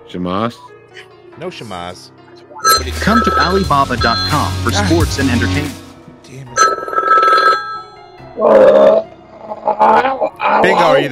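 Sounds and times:
speech: 0:00.1 - 0:06.7, 0:08.4 - 0:09.0, 0:09.8 - 0:11.1
telephone ringing: 0:02.6 - 0:05.3, 0:06.6 - 0:08.2.

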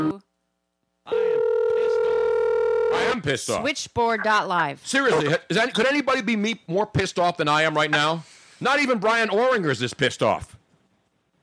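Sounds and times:
steady electronic Skype calling tone: 0:01.1 - 0:03.2
speech: 0:03.2 - 0:10.5.

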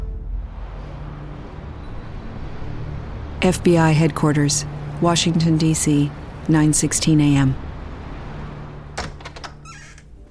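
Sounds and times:
steady low hum of indoor room tone: 0:00.0 - 0:09.0
faint rising squeak of an office door: 0:01.5 - 0:02.5, 0:09.5 - 0:10.1
speech: 0:03.4 - 0:07.6
office door opening with clicks and rattles: 0:09.0 - 0:10.1.

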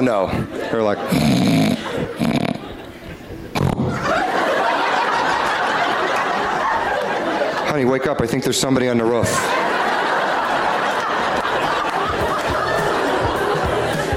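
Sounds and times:
speech: 0:00.0 - 0:02.3, 0:07.8 - 0:09.8
audience laughter: 0:00.0 - 0:08.2, 0:09.0 - 0:14.1
person imitating a husband's loud snoring with rough rasping snorts: 0:01.1 - 0:02.6.

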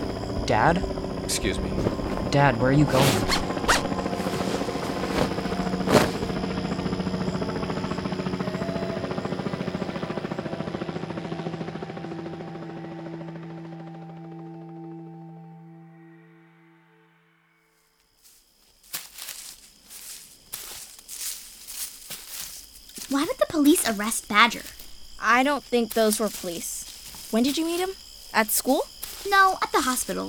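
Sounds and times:
helicopter rotor thumping overhead: 0:00.0 - 0:14.8, 0:20.9 - 0:30.2
speech: 0:00.5 - 0:03.5, 0:24.0 - 0:30.2.

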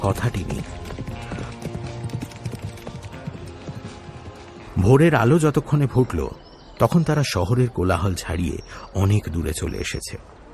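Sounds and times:
speech: 0:00.0 - 0:01.0, 0:04.8 - 0:10.4
four horses galloping under a cloudy sky in cold wind: 0:00.0 - 0:05.4.

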